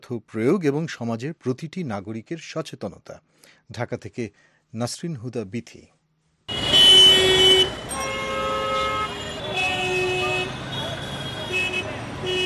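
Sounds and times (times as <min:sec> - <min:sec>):
speech: 0:00.1 - 0:06.6
constant rumble of street traffic vehicles in Dhaka: 0:06.5 - 0:12.4
hydraulic car horns honking in Dhaka street traffic: 0:06.5 - 0:12.4.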